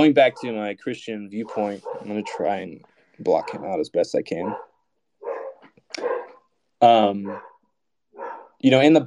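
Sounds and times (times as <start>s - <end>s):
speech: 0.0s - 4.7s, 6.8s - 7.5s, 8.2s - 9.0s
dog barking: 0.2s - 0.7s, 1.4s - 6.5s, 7.2s - 8.6s.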